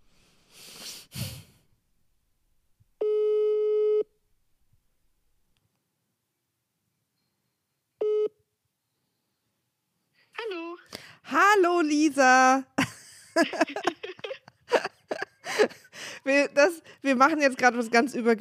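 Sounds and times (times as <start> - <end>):
sharp exhale: 0.0 - 1.7
mobile phone call ringback tone beeps: 3.0 - 4.1, 8.0 - 8.3
speech: 11.8 - 12.7, 13.4 - 14.0, 15.6 - 18.4
laughter: 12.8 - 16.1.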